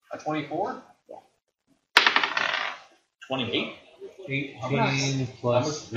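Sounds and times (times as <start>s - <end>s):
speech: 0.2s - 1.2s, 3.3s - 5.9s
dice including a d20 clattering onto a hard table: 2.0s - 2.9s.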